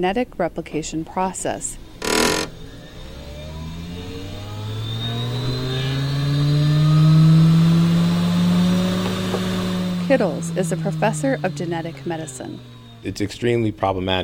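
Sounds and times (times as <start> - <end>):
speech: 0.0 - 2.5, 10.1 - 14.2
laboratory centrifuge spinning DNA samples in a genetics lab: 1.6 - 13.8.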